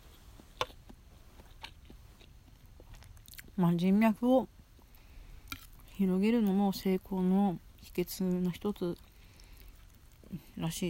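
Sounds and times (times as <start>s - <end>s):
person chewing pasta with cod roe: 0.0s - 3.6s, 4.7s - 6.6s, 8.8s - 10.5s
speech: 3.6s - 4.6s, 6.0s - 9.1s, 10.3s - 10.8s.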